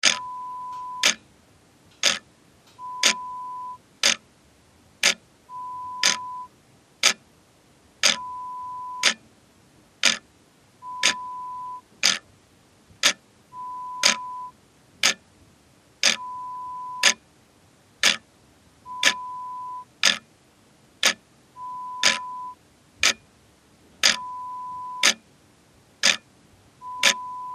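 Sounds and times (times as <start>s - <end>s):
clock ticking: 0.0s - 1.2s, 2.0s - 2.2s, 2.8s - 4.2s, 5.0s - 5.2s, 5.9s - 7.2s, 8.0s - 9.2s, 10.0s - 10.2s, 10.8s - 12.2s, 13.0s - 13.2s, 13.9s - 15.2s, 16.0s - 17.2s, 18.0s - 18.2s, 18.9s - 20.2s, 21.0s - 21.2s, 21.9s - 23.2s, 24.0s - 24.3s, 25.0s - 25.2s, 26.0s - 26.2s, 26.8s - 27.5s.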